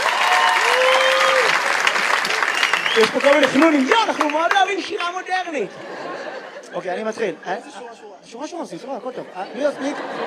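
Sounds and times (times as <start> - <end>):
audience clapping at a modern poetry reading: 0.0 - 5.7
speech: 3.0 - 10.2
laughter: 3.6 - 8.0, 8.8 - 10.2.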